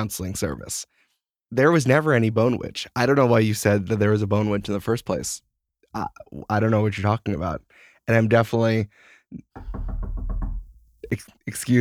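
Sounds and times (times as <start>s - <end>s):
speech: 0.0s - 10.2s, 11.1s - 11.8s
soft thump: 9.6s - 10.9s
knocking on a window: 9.6s - 11.1s.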